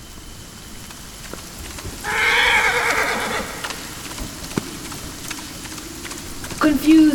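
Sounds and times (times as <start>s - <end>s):
rain falling: 0.0s - 7.1s
horse whinnying in the rain: 2.0s - 3.8s.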